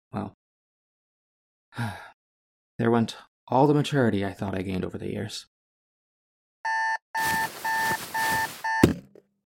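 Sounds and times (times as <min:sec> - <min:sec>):
speech: 0:00.2 - 0:00.4, 0:01.8 - 0:02.0, 0:02.8 - 0:05.5
alarm clock beeping in electronic bursts: 0:06.7 - 0:08.9.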